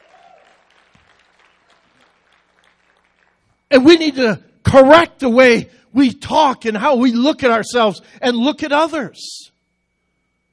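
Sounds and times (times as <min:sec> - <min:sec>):
church audience applauding during a service: 0:00.0 - 0:03.5
speech: 0:03.7 - 0:09.5.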